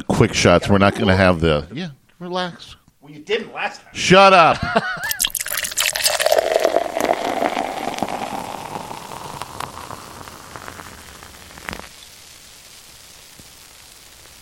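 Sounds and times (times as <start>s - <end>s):
speech: 0.2s - 5.4s
raspberry imperial stout poured into a glass: 5.0s - 12.0s
glassy clink: 5.1s - 10.0s.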